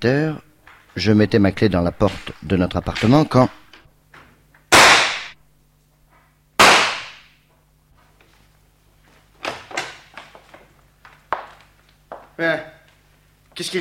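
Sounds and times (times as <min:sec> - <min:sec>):
speech: 0:00.0 - 0:03.6, 0:13.6 - 0:13.7
revolver shots fired inside a living room: 0:04.7 - 0:05.4, 0:06.6 - 0:07.3.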